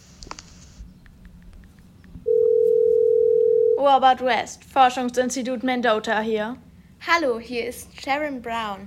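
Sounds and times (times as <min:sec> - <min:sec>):
quiet hum: 0:00.0 - 0:08.8
steady telephone dial tone while calling: 0:02.3 - 0:03.8
speech: 0:03.8 - 0:08.8.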